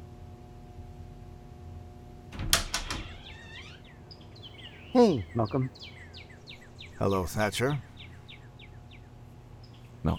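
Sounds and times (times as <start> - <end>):
door latch and frame rattling clunks: 2.4 - 3.5
door squeaking: 2.4 - 4.0
speech: 4.9 - 6.0, 7.0 - 7.9.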